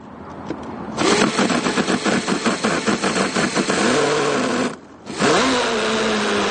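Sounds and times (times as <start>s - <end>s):
small gas-powered radio-controlled model boat engine buzzing and revving: 1.0s - 6.4s.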